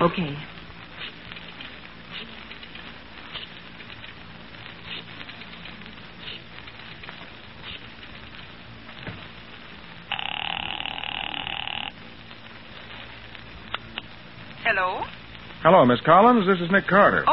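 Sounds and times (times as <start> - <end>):
speech: 0.0 - 0.5, 15.6 - 17.3
steady crackling hiss: 0.0 - 17.3
telephone ringing: 10.1 - 11.9.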